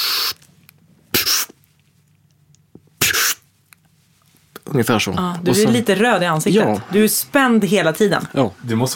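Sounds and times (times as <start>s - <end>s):
short hissing inhalations demonstrating anti-G breathing technique: 0.0s - 0.4s, 1.1s - 1.6s, 3.0s - 3.4s
speech: 4.7s - 8.9s.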